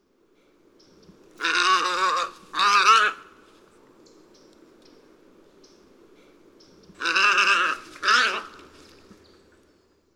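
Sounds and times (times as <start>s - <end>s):
Egretta tricolor: 1.4s - 3.4s, 6.2s - 9.4s.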